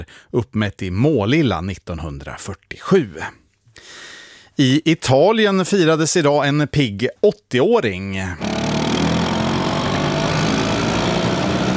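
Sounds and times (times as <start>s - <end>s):
speech: 0.0s - 4.0s, 4.6s - 8.5s
Italian Vespa moped engine running: 8.4s - 11.7s.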